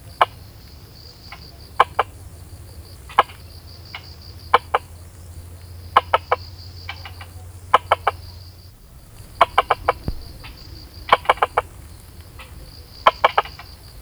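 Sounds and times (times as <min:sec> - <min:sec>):
frog calling with quick dry clicks: 0:00.0 - 0:14.0.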